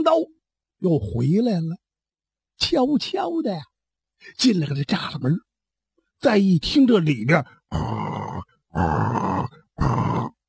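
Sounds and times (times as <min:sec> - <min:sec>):
speech: 0:00.0 - 0:01.8, 0:02.6 - 0:05.5, 0:06.2 - 0:10.4
person imitating a sleeping man's loud snoring: 0:07.7 - 0:10.4.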